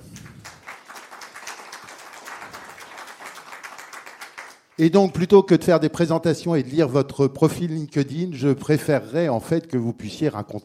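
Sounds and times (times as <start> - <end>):
room full of people clapping: 0.0 - 4.8
speech: 4.8 - 10.6.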